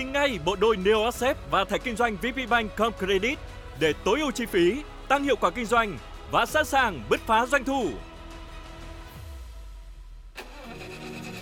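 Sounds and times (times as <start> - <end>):
speech: 0.2 - 8.1
car engine cranking and starting: 8.2 - 11.3.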